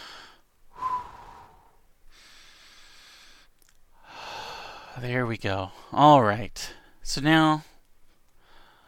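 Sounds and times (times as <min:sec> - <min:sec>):
deep breathing: 0:00.0 - 0:05.0, 0:08.1 - 0:08.8
speech: 0:05.0 - 0:07.7.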